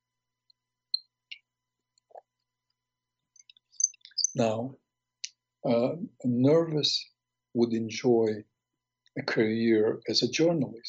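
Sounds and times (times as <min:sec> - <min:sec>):
mouth clicks: 0:03.4 - 0:04.6
speech: 0:04.4 - 0:04.8, 0:05.6 - 0:08.5, 0:09.2 - 0:10.8.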